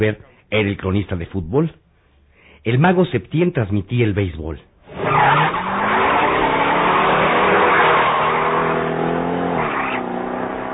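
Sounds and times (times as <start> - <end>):
speech: 0.0 - 1.8, 2.6 - 5.5
car engine roaring: 4.8 - 10.7.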